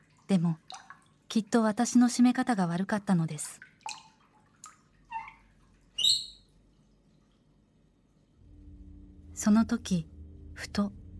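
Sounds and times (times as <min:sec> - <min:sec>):
water dripping from a shower head: 0:00.0 - 0:08.7
speech: 0:00.3 - 0:03.7, 0:09.4 - 0:11.0
low steady rumble: 0:08.4 - 0:11.1.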